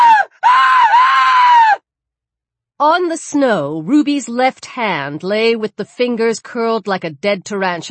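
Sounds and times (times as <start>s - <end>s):
woman shrieking in pain: 0.0s - 1.8s
woman's long sustained high-pitched scream: 0.0s - 1.8s
speech: 3.1s - 7.8s.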